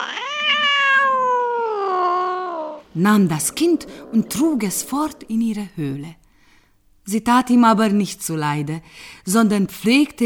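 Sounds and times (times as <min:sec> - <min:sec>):
wild cat yowling: 0:00.0 - 0:05.8
speech: 0:03.0 - 0:06.2, 0:07.1 - 0:10.2.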